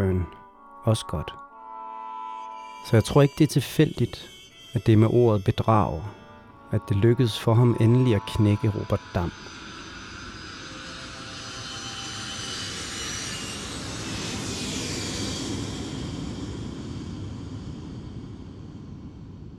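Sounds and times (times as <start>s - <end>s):
speech: 0.8s - 1.4s, 2.8s - 9.6s
airplane engine roar landing at Kastrup Airport: 2.7s - 19.5s.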